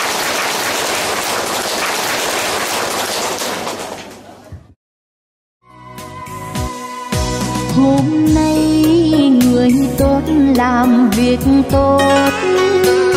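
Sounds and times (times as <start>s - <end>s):
large audience clapping: 0.0s - 4.4s
music: 5.6s - 13.1s
speech: 10.0s - 13.0s.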